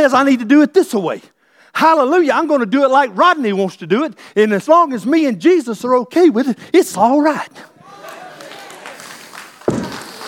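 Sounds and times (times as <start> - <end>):
speech: 0.0 - 7.7
heavy foot stomp on the floor: 9.7 - 10.2.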